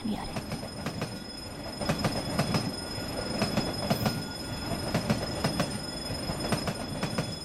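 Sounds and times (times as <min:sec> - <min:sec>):
train wheels clacking on rails: 0:00.0 - 0:07.4.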